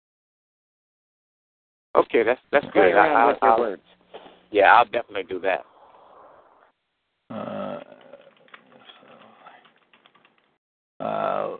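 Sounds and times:
speech: 2.0 - 5.7
typing on a computer keyboard: 8.0 - 10.6.

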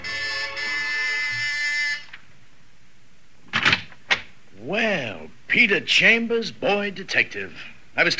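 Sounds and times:
harsh steady house door buzzer ringing: 0.0 - 2.2
speech: 5.5 - 8.1.

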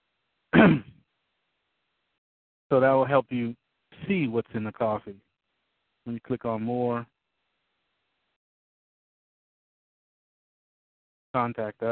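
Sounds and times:
person clearing throat: 0.6 - 1.0
speech: 2.7 - 5.2, 6.0 - 7.1, 11.4 - 11.9.

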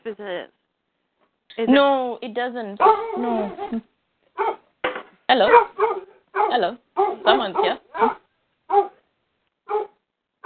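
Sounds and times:
speech: 0.1 - 0.6, 1.6 - 4.6, 5.3 - 8.2
dog barking: 2.8 - 3.7, 4.4 - 4.6, 5.4 - 9.0, 9.7 - 10.4.

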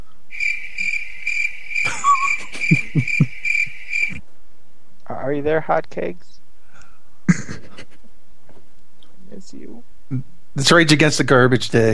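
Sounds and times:
crickets chirping: 0.3 - 4.2
laughter: 1.9 - 3.3, 7.3 - 8.0
whistly tone: 1.9 - 3.3
speech: 5.3 - 6.3, 9.5 - 11.9.

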